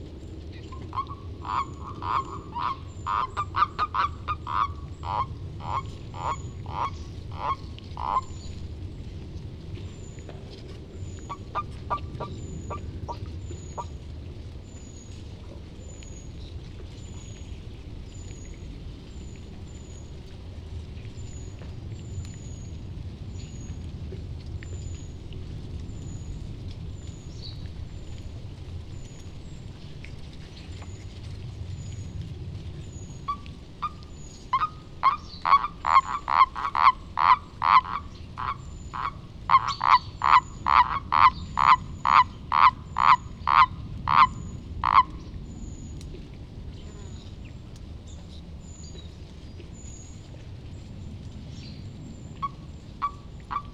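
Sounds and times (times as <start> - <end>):
common toad Bufo bufo calling: 0.8 - 8.5, 33.3 - 45.2, 52.4 - 53.7.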